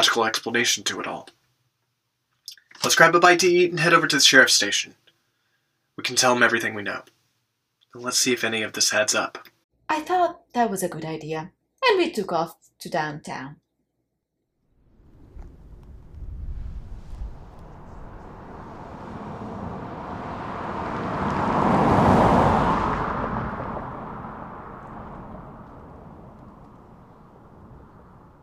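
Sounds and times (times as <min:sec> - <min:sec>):
speech: 0:00.1 - 0:01.4, 0:02.8 - 0:05.0, 0:06.0 - 0:07.2, 0:07.9 - 0:13.6
car driving past: 0:14.7 - 0:28.4.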